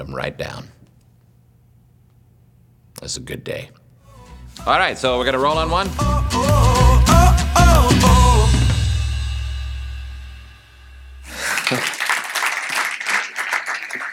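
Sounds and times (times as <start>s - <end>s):
speech: 0.0s - 0.8s, 3.0s - 3.8s, 4.6s - 6.6s
vocal sounds: 4.0s - 8.8s
audience applause: 11.3s - 14.1s.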